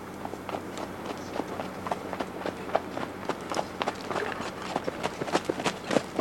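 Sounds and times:
horse cantering: 0:00.2 - 0:06.2.

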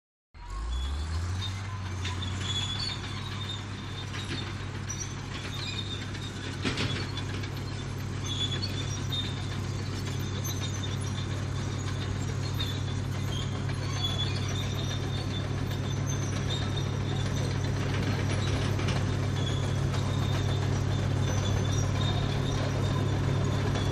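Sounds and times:
earth mover engine starting up: 0:00.4 - 0:23.8.

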